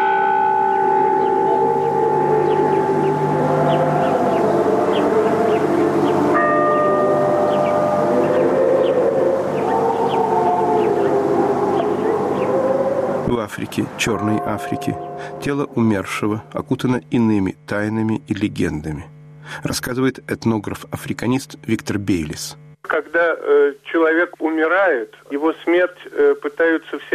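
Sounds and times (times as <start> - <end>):
church bells ringing: 0.0 - 17.0
speech: 13.6 - 27.1.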